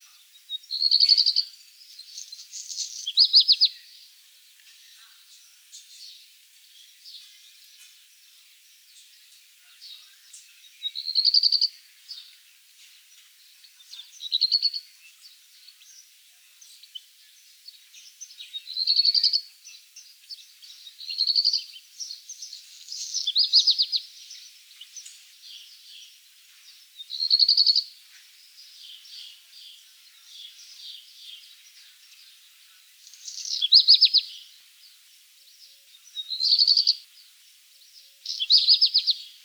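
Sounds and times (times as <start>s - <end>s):
black redstart singing: 0.3s - 3.9s, 9.7s - 12.3s, 17.7s - 26.1s, 26.7s - 27.9s, 28.6s - 34.5s, 35.6s - 37.0s, 38.2s - 39.4s.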